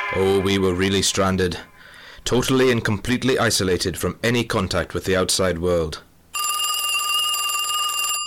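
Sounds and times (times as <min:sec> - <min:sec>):
speech: 0:00.2 - 0:06.1
telephone ringing with a rapidly trilling electric bell: 0:06.4 - 0:08.2.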